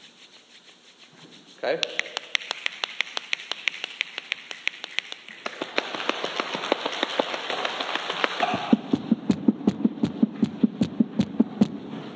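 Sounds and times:
church audience rubbing many hands to imitate rain: 0:00.0 - 0:11.8
speech: 0:01.6 - 0:02.1
church audience tapping and snapping fingers imitating rain: 0:01.8 - 0:11.8.

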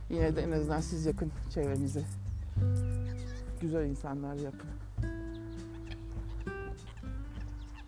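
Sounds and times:
speech: 0:00.1 - 0:03.0, 0:03.6 - 0:05.1
mother ducks honking at a pond: 0:01.6 - 0:03.8, 0:05.3 - 0:07.8.

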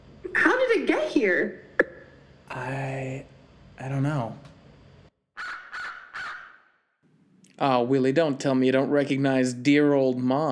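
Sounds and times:
speech: 0:00.8 - 0:01.7, 0:02.5 - 0:04.5, 0:07.6 - 0:10.5
crow cawing: 0:05.4 - 0:06.8.

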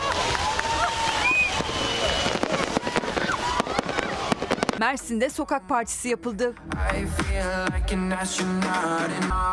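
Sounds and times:
fireworks crackling, popping and whistling: 0:00.0 - 0:05.2
crowd noise: 0:00.0 - 0:09.5
speech: 0:04.8 - 0:09.5.

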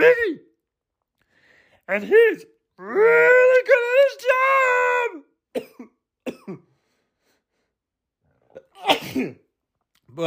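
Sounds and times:
speech: 0:00.0 - 0:00.4, 0:01.9 - 0:05.9, 0:08.8 - 0:09.4
short throaty coughing bursts: 0:05.5 - 0:06.7, 0:08.4 - 0:09.6.

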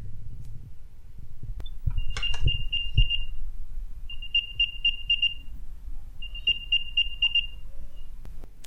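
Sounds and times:
faint low rumble: 0:00.0 - 0:08.6
AirTag locating chime of rapid high-pitched chirping tones: 0:01.6 - 0:03.4, 0:04.1 - 0:05.6, 0:06.2 - 0:08.2.

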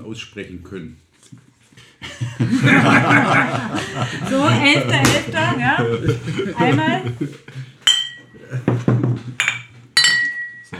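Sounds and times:
speech: 0:00.1 - 0:01.5, 0:02.2 - 0:07.7
laughter: 0:02.0 - 0:07.8, 0:08.4 - 0:08.9
low murmuring background: 0:03.1 - 0:09.4
glasses clinking in a toast: 0:07.8 - 0:10.7.

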